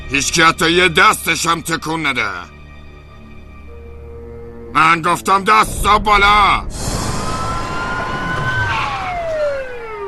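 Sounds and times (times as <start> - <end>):
speech: 0.1 - 2.6, 4.7 - 7.0
ambulance sirens wailing: 7.2 - 10.0.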